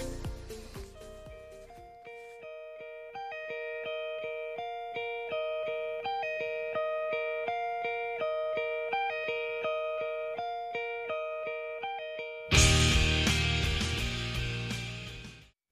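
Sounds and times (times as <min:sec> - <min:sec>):
clean chiming guitar riff of a rock song on a radio broadcast in Seoul: 0:00.0 - 0:15.4
loud rock band with distorted guitars and drums: 0:12.5 - 0:15.5.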